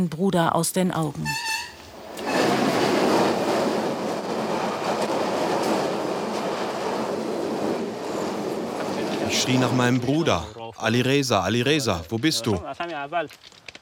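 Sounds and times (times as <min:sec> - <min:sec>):
speech: 0:00.0 - 0:01.6, 0:09.4 - 0:13.6
train rumbling past on railway tracks: 0:01.2 - 0:11.2.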